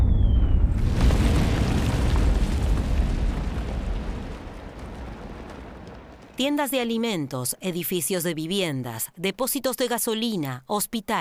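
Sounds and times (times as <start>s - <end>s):
faint falling whistle of an artillery shell: 0.0s - 0.8s
German artillery blast shelling a city: 0.0s - 6.4s
heavy rolling rumble after an artillery blast: 0.0s - 6.5s
speech: 6.4s - 11.1s.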